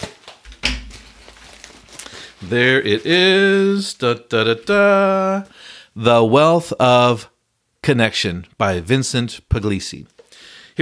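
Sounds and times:
scissors cutting open plastic book wrapping: 0.0s - 2.2s
faint rustling and handling noise: 0.0s - 4.7s
speech: 2.4s - 7.3s, 7.9s - 10.2s.

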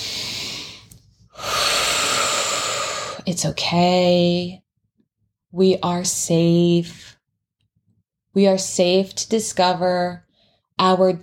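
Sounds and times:
deep breath in during a guided meditation: 0.0s - 3.2s
speech: 3.3s - 4.6s, 5.5s - 7.2s, 8.4s - 10.2s, 10.8s - 11.2s.

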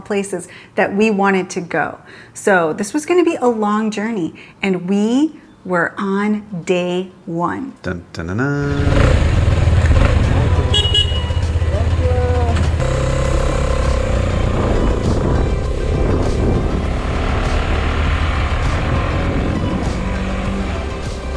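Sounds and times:
speech: 0.0s - 9.3s
horn toots: 8.4s - 21.2s
road noise: 8.6s - 21.3s
KTM 250 motorcycle engine riding through traffic in Borneo: 8.7s - 21.3s.

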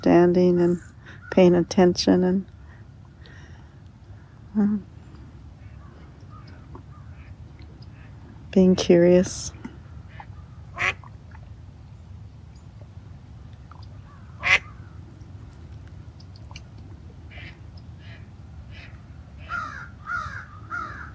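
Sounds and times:
speech: 0.0s - 2.5s, 4.5s - 4.9s, 8.5s - 9.6s
ducks quacking: 10.0s - 11.1s, 14.0s - 15.0s, 17.3s - 21.1s.

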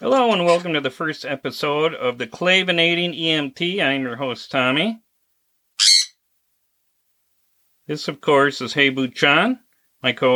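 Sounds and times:
speech: 0.0s - 5.0s, 5.8s - 6.1s, 7.9s - 10.3s
sun conure parrot squawking: 0.2s - 0.7s, 5.8s - 6.2s.

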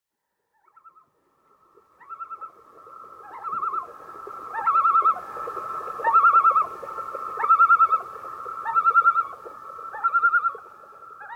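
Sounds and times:
common loon calling: 3.2s - 3.9s, 4.5s - 5.2s, 6.0s - 6.8s, 7.4s - 11.3s.

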